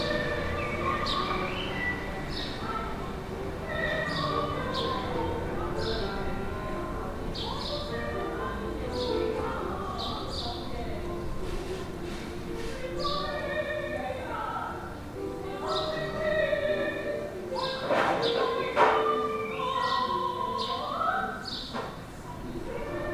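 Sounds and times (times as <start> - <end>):
singer practicing across a courtyard in Lisbon: 0.0 - 23.1.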